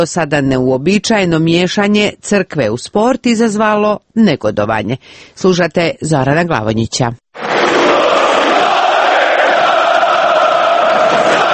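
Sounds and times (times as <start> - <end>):
speech: 0.0 - 7.2
stadium crowd of football fans chanting a supporters' song: 7.4 - 11.5.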